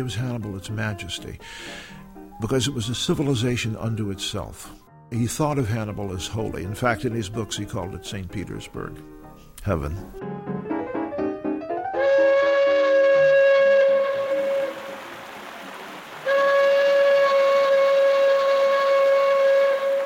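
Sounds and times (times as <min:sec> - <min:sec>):
speech: 0:00.0 - 0:10.6
musical notes: 0:00.0 - 0:20.0
steamboat whistle long loud steady blasts: 0:11.9 - 0:15.2, 0:16.2 - 0:20.0.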